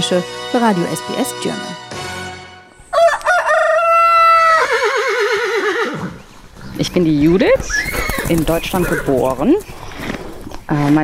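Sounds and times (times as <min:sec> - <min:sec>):
speech: 0:00.1 - 0:01.8, 0:07.0 - 0:09.8, 0:10.7 - 0:11.0
rooster crowing: 0:02.8 - 0:05.8.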